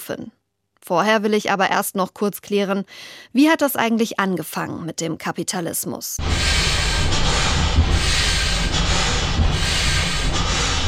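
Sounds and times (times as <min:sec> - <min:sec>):
speech: 0:00.1 - 0:08.2
steam engine chugging: 0:06.2 - 0:10.8.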